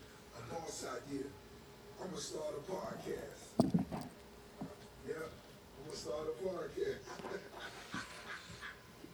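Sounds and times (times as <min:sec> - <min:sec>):
speech: 0:00.5 - 0:04.2, 0:05.2 - 0:07.8
dog panting: 0:07.2 - 0:08.9.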